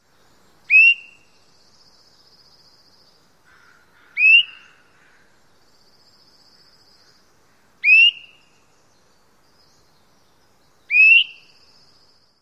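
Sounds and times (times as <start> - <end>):
Swainson's thrush weep calls: 0.7 - 1.3, 3.5 - 5.3, 7.8 - 8.5, 10.9 - 11.6.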